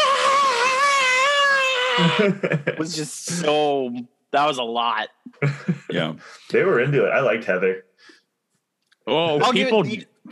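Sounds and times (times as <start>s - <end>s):
high-pitched terrified scream: 0.0s - 2.3s
laughter: 2.0s - 3.5s, 5.4s - 7.4s
speech: 2.0s - 8.2s, 9.1s - 10.3s.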